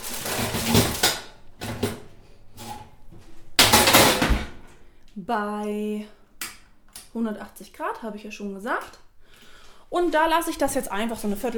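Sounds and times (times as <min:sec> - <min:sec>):
tray of peppers rattling and scraping as it is pushed into a kitchen oven: 0:00.0 - 0:04.6
speech: 0:05.2 - 0:06.2, 0:07.1 - 0:09.0, 0:09.9 - 0:11.5.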